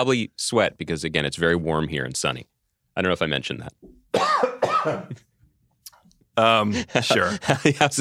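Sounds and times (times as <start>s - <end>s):
speech: 0.0s - 5.3s, 6.4s - 7.9s
raspy cough: 4.1s - 5.3s.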